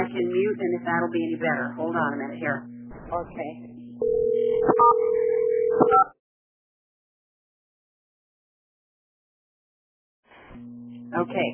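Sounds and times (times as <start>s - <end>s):
speech: 0.5s - 5.2s, 10.6s - 11.5s
telephone ringing: 4.0s - 6.0s.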